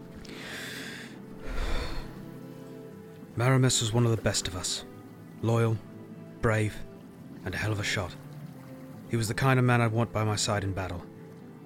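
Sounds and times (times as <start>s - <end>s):
heavy breathing: 0.2s - 2.2s
speech: 3.4s - 8.2s, 9.1s - 11.1s.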